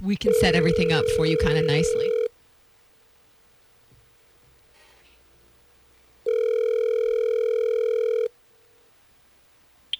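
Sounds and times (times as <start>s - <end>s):
speech: 0.0s - 2.2s
ringback tone of a phone call: 0.2s - 2.3s, 6.3s - 8.3s.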